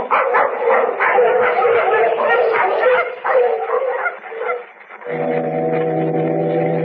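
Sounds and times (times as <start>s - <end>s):
pack of sled dogs barking and yipping excitedly: 0.0s - 6.8s
deep steady foghorn blast: 5.0s - 6.8s.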